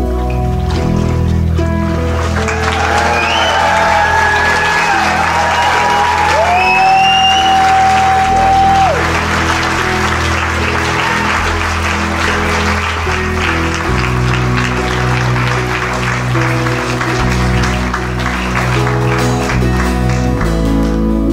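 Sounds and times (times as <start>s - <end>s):
audience applause after a baptism: 0.1s - 21.2s
audience whoops and cheers: 2.4s - 12.2s.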